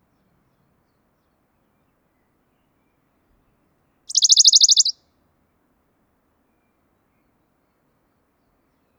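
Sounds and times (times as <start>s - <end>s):
Western Bonelli's warbler trilling song: 4.1s - 5.0s.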